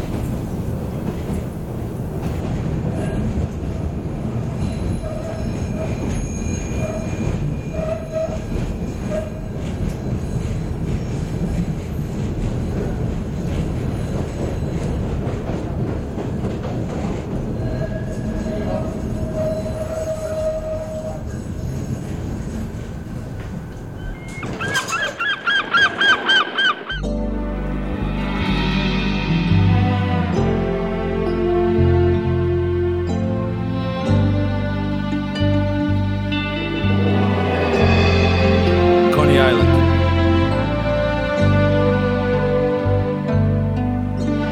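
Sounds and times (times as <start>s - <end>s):
subway train rumbling on rails: 0.0s - 44.5s
subway train metallic wheel squeals: 4.6s - 12.0s, 17.6s - 27.0s.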